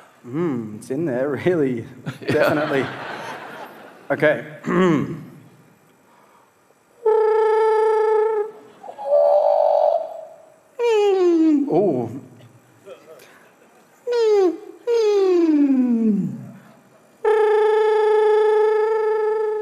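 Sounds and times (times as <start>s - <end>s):
man making buzzy throat tones with throat muscles: 0.2s - 0.8s, 4.6s - 5.4s, 7.0s - 12.4s, 14.0s - 19.6s
speech: 0.2s - 3.2s, 4.1s - 5.3s
laughter: 2.0s - 4.1s, 12.8s - 14.0s.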